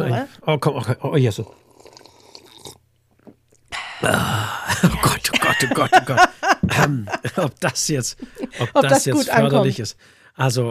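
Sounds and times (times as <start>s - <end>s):
speech: 0.2s - 1.7s, 4.0s - 10.6s
slurping hot herbal tea: 1.4s - 4.4s
soft mouth noises: 1.4s - 4.4s
laughter: 4.7s - 9.8s.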